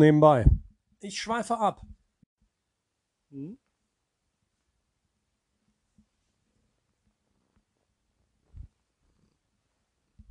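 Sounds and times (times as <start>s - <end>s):
speech: 0.0s - 1.9s, 3.3s - 3.6s
female cat purring: 8.5s - 10.2s.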